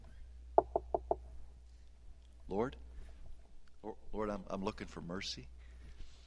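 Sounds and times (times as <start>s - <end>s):
light quick taps on a door: 0.6s - 1.2s
speech: 2.5s - 2.8s, 4.6s - 5.6s.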